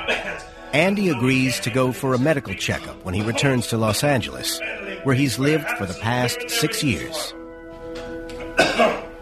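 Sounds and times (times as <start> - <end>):
person coughing: 0.0 - 0.6, 8.4 - 9.2
speech: 0.2 - 7.4, 8.8 - 9.0.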